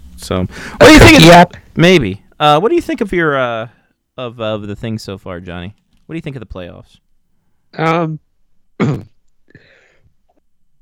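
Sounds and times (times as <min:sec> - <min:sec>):
speech: 0:00.2 - 0:07.0, 0:07.7 - 0:09.1
person clearing throat and coughing: 0:08.8 - 0:09.8.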